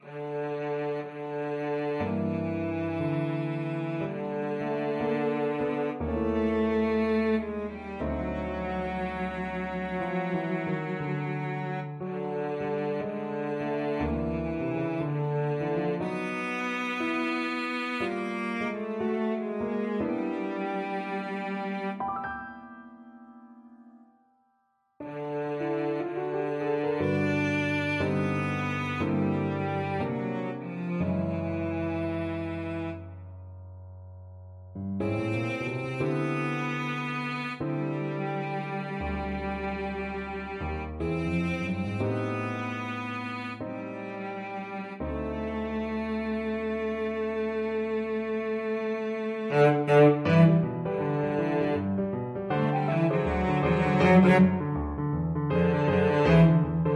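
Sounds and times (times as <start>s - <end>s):
jazzy cello music: 0.0s - 22.7s, 25.0s - 33.2s, 35.0s - 56.9s.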